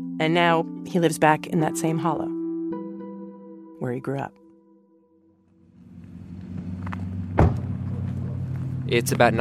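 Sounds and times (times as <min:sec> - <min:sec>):
speech: 0:00.2 - 0:02.4, 0:03.8 - 0:04.4, 0:08.9 - 0:09.4
pickup truck low engine rumble: 0:05.6 - 0:09.4
sharp thump: 0:06.6 - 0:08.0.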